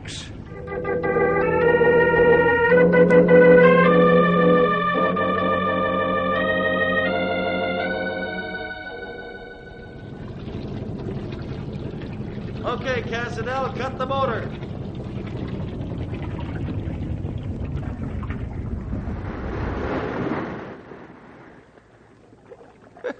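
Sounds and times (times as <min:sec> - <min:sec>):
motorboat engine droning as the boat travels up a river: 0:00.4 - 0:23.0
speech: 0:13.4 - 0:14.6.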